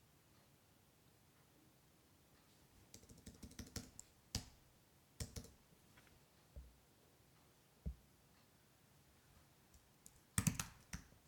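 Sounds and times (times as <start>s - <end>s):
keys clacking on a computer keyboard: 2.9s - 4.5s, 5.2s - 5.6s, 10.1s - 11.2s.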